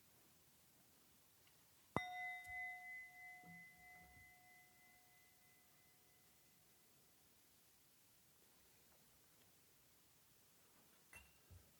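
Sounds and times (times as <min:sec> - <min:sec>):
bell struck and ringing: 0:02.0 - 0:06.2.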